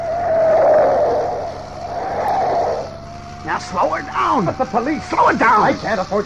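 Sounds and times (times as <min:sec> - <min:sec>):
car engine roaring as it speeds around a corner: 0:00.0 - 0:06.2
speech: 0:03.6 - 0:06.2.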